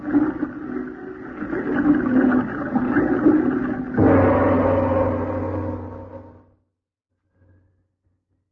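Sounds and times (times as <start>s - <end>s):
water gushing and roaring from an opening: 0.0s - 6.4s.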